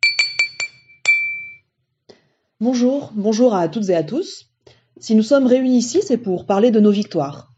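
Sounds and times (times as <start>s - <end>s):
glass tapped to call for a toast: 0.0s - 1.7s
glass clinking: 0.0s - 1.8s
speech: 2.6s - 7.5s.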